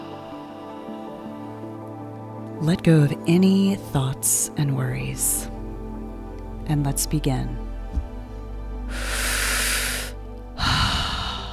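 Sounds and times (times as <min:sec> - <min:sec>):
speech: 0:02.6 - 0:05.6, 0:06.7 - 0:07.6
person breathing in and out through the mouth during a breathwork session: 0:08.9 - 0:11.5.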